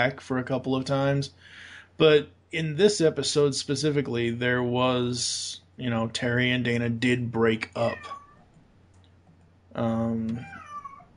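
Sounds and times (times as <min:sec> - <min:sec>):
speech: 0:00.0 - 0:08.2, 0:09.8 - 0:10.6
cat meowing: 0:07.8 - 0:08.5, 0:10.3 - 0:11.1.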